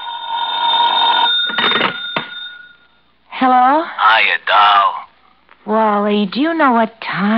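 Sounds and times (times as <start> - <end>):
telephone bell ringing: 0.0 - 3.0
speech: 3.4 - 5.0, 5.6 - 7.3.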